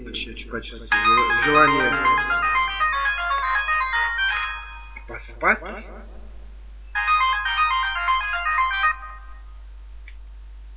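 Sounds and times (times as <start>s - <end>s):
speech: 0.1s - 2.5s, 5.4s - 6.0s
melodic alarm clock ringtone of electronic chimes: 0.9s - 5.1s, 6.9s - 9.6s.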